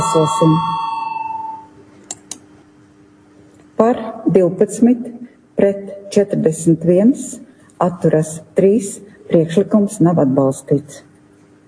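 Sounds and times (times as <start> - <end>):
electronic bell ringing in a parliament to call a vote: 0.0 - 1.8
speech: 0.1 - 0.8, 3.8 - 11.1.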